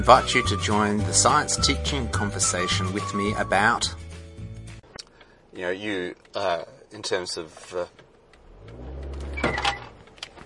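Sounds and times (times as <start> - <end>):
speech: 0.0 - 4.0, 5.6 - 8.0
car brakes squeaking: 6.1 - 10.4
car engine humming low: 7.6 - 10.4.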